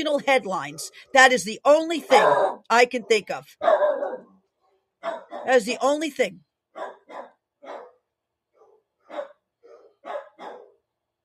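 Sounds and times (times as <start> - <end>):
speech: 0.0 - 3.9, 5.0 - 7.8
several dogs barking: 2.1 - 4.3, 5.0 - 5.6, 6.7 - 8.0, 8.6 - 10.8.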